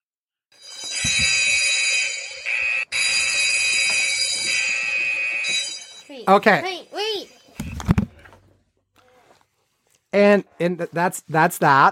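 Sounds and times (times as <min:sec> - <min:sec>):
shrill electronic alarm from a new timer: 0:00.6 - 0:06.2
speech: 0:06.3 - 0:06.7, 0:10.2 - 0:11.8.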